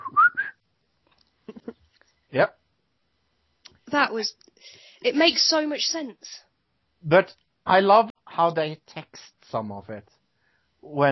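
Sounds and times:
person whistling a short rising melodic phrase: 0.0 - 0.6
speech: 2.3 - 2.6, 3.9 - 10.2, 10.9 - 11.1.

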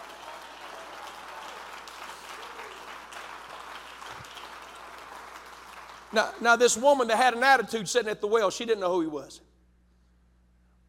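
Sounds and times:
audience clapping hands: 0.0 - 7.1
speech: 6.1 - 9.5.

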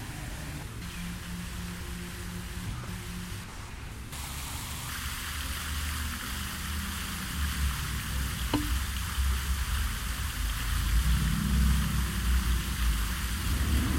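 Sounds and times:
campus fountain falling water hissing: 0.0 - 13.9
low traffic rumble: 0.0 - 13.9
sharp tap: 8.5 - 8.8.

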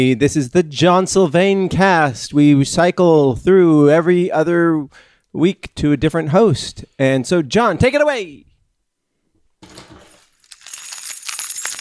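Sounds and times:
speech: 0.0 - 8.5
bunch of keys jangling: 10.0 - 11.8.

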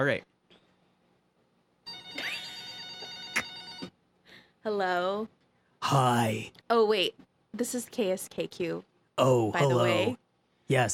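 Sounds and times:
speech: 0.0 - 0.3, 4.6 - 10.9
telephone ringing with a bright electronic tone: 1.8 - 4.0.

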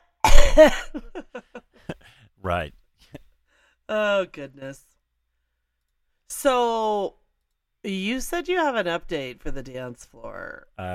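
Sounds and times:
person coughing harshly: 0.2 - 1.0
speech: 0.6 - 1.5, 2.4 - 2.8, 3.9 - 4.9, 6.3 - 7.2, 7.8 - 10.9
voice playfully imitating a horse: 10.8 - 10.9.

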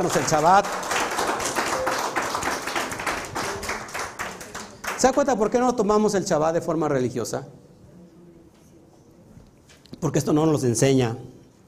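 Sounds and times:
speech: 0.0 - 1.0, 5.0 - 7.7, 10.0 - 11.4
crowd applauding: 0.0 - 5.4.

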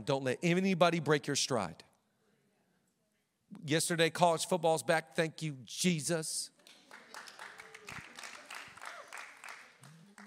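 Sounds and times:
speech: 0.0 - 1.9, 3.6 - 6.5
single person clapping hands: 6.6 - 10.2.

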